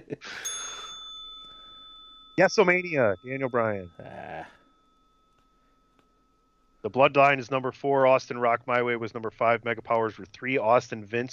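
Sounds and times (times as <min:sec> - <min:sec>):
speech: 0:00.1 - 0:00.5, 0:02.4 - 0:04.6, 0:06.8 - 0:11.3
single metallic bell struck: 0:00.4 - 0:07.2.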